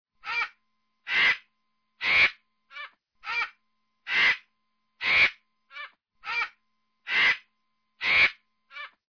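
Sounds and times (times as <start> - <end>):
vulture: 1.1 - 3.5, 4.1 - 6.5, 7.1 - 9.0.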